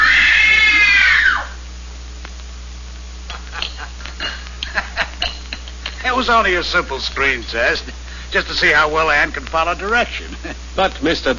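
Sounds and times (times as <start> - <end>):
woman screaming in terror: 0.0 - 1.6
laughter: 3.3 - 5.8
speech: 6.2 - 11.3.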